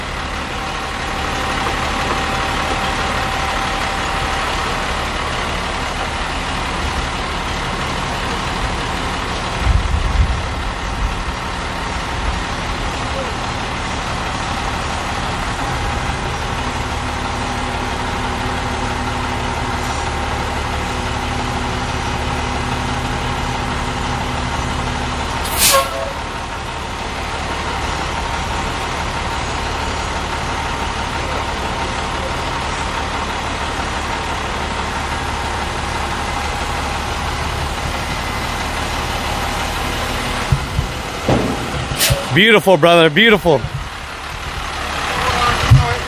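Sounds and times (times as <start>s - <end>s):
dump truck engine running: 0.0s - 46.0s
low thump: 40.5s - 42.3s
speech: 42.4s - 43.7s.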